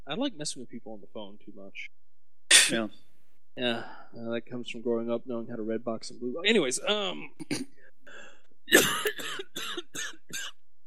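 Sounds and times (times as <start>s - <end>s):
speech: 0.1s - 2.0s, 2.7s - 10.6s
person clearing throat with rasping hacks: 2.5s - 2.9s, 7.3s - 7.8s, 8.7s - 10.5s.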